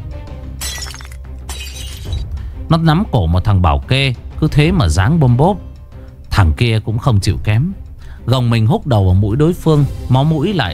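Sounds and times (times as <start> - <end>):
beer bottle smashed onto a table shattering: 0.6 - 2.2
speech: 2.7 - 5.7, 6.4 - 10.7.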